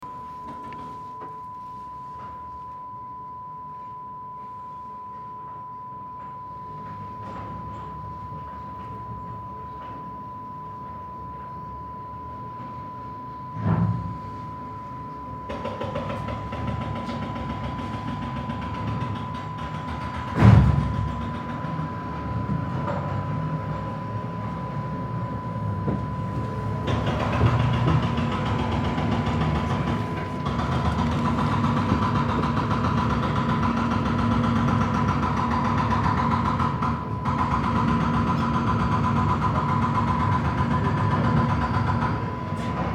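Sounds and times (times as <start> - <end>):
roadworks: 15.5 - 42.9.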